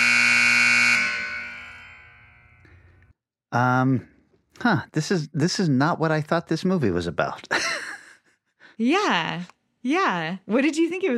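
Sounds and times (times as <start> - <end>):
loud harsh game timer buzzer: 0.0 - 2.6
speech: 3.5 - 7.7, 8.8 - 11.1.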